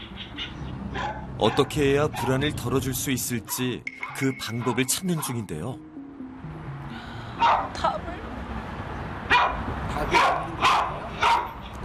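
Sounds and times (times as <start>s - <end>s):
dog barking: 0.4s - 2.4s, 4.6s - 5.4s, 7.4s - 7.7s, 9.3s - 11.6s
speech: 1.4s - 5.9s, 7.4s - 8.0s.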